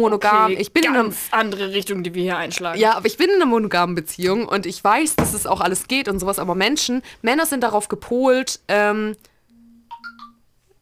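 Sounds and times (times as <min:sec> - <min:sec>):
speech: 0:00.0 - 0:09.3
mobile phone ringtone of three bright electronic tones: 0:09.6 - 0:10.4.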